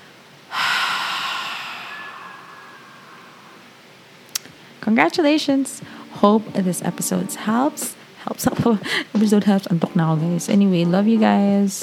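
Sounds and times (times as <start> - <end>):
person exhaling deeply: 0.5 - 3.7
speech: 4.9 - 11.8.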